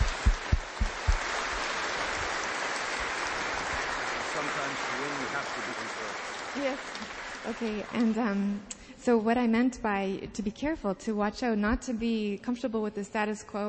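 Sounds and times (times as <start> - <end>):
audience applause: 0.0 - 8.4
speech: 6.6 - 13.6.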